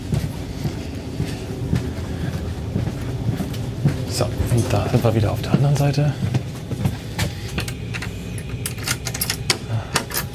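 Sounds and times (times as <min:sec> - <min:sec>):
air conditioning unit blowing loudly: 0:00.0 - 0:10.3
speech: 0:04.2 - 0:06.3.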